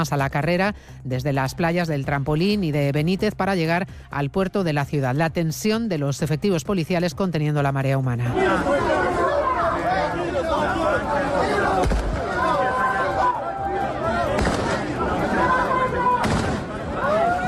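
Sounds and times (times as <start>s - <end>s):
speech: 0.0s - 9.0s
dense agitated crowd shouting and babbling: 8.2s - 17.4s
sharp gunshots fired into the air: 14.3s - 15.0s, 16.2s - 16.8s.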